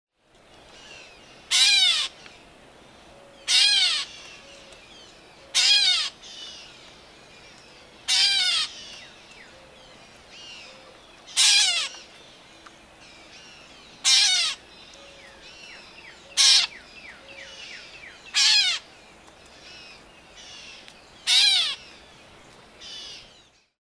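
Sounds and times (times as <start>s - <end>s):
Grey Catbird Dumetella carolinensis calling: 0.8s - 2.2s, 3.2s - 4.8s, 5.4s - 6.7s, 8.1s - 9.8s, 10.4s - 12.1s, 13.4s - 15.4s, 16.2s - 18.9s, 19.6s - 21.8s.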